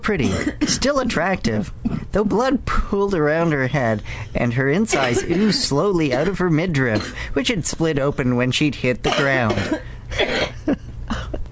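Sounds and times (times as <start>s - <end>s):
speech: 0.0s - 10.8s
person coughing harshly: 0.2s - 0.8s, 1.8s - 2.1s, 4.9s - 7.3s, 9.0s - 11.4s.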